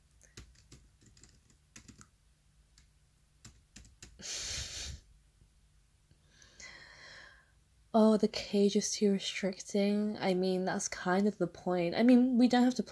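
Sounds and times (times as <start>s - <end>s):
typing on a laptop keyboard: 0.2s - 4.3s
speech: 7.9s - 12.9s.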